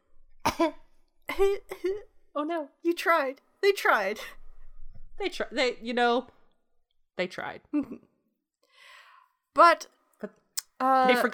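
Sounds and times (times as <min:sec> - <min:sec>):
single short sharp cough: 0:00.4 - 0:01.9
speech: 0:00.6 - 0:00.8, 0:01.4 - 0:04.4, 0:05.2 - 0:06.4, 0:07.2 - 0:08.1, 0:09.6 - 0:11.3.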